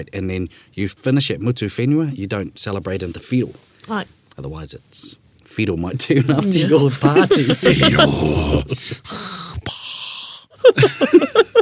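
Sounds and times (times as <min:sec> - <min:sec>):
speech: 0:00.0 - 0:09.3, 0:10.7 - 0:11.4
laughter: 0:06.3 - 0:09.6, 0:10.6 - 0:11.5
person imitating heavy masked respirator breathing: 0:07.3 - 0:11.0.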